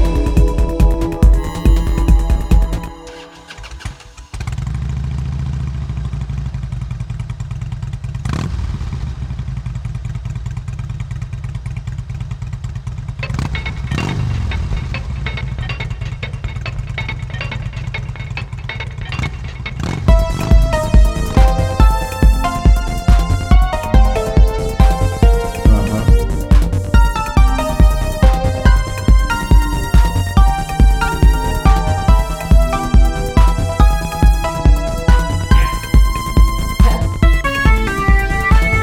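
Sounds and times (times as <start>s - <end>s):
motorcycle engine throttle blips: 0.0s - 4.4s, 13.2s - 38.8s
motorcycle engine starting and idling: 0.0s - 38.8s.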